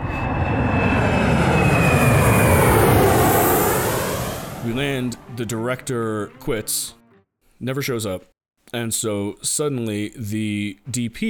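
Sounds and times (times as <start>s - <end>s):
airplane jet engines roaring as the aircraft flies overhead: 0.0s - 5.6s
speech: 5.1s - 7.0s, 7.6s - 11.2s.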